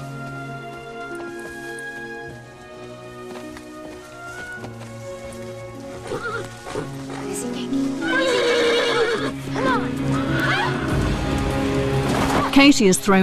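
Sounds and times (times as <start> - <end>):
horse hooves clip-clopping across a dried-out stream bed and woodland path: 0.0 - 13.0
horse whinnying: 6.0 - 7.0, 8.0 - 11.0
speech: 12.6 - 13.2.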